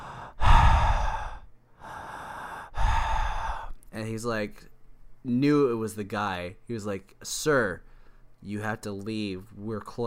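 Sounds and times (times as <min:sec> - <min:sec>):
voice imitating a man's deep heavy breathing in a restroom stall: 0:00.0 - 0:03.8
speech: 0:04.0 - 0:10.0.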